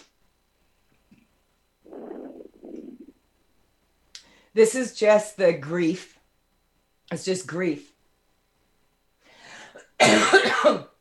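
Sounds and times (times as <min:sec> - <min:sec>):
speech: 0:04.5 - 0:06.2, 0:07.1 - 0:07.9
person coughing harshly during an energy-work session: 0:09.6 - 0:11.0.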